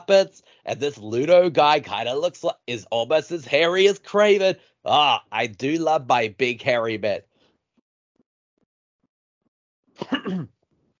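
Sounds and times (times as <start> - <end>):
speech: 0.1 - 7.3, 10.0 - 10.6
single short throaty cough: 10.0 - 10.6.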